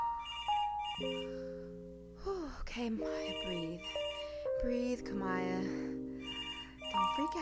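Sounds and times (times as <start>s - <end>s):
phone ringing with an electronic tone: 0.0s - 1.5s, 3.2s - 4.6s, 6.2s - 7.4s
speech: 1.0s - 1.5s, 2.8s - 4.0s, 4.6s - 5.9s, 6.9s - 7.4s.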